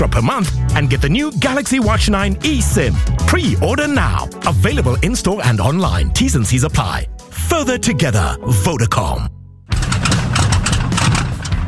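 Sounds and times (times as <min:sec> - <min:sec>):
speech: 0:00.0 - 0:09.4
air show engine roaring at full throttle: 0:09.7 - 0:11.6.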